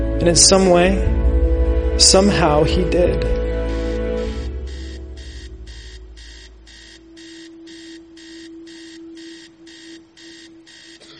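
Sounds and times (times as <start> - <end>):
speech: 0.2 - 1.2, 2.0 - 3.4
alarm clock ringing with shrill electronic beeps: 3.6 - 11.1.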